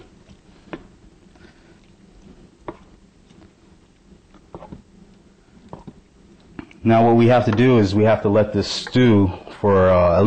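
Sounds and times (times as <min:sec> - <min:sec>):
spoon stirring thick chili in a pot: 0:00.0 - 0:09.6
low steady hum: 0:00.0 - 0:10.2
speech: 0:06.8 - 0:10.2.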